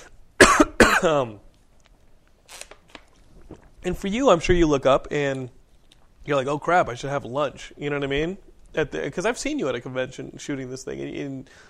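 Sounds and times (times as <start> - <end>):
person coughing: 0.4 - 1.2
speech: 1.0 - 1.5, 3.8 - 5.6, 6.3 - 11.6.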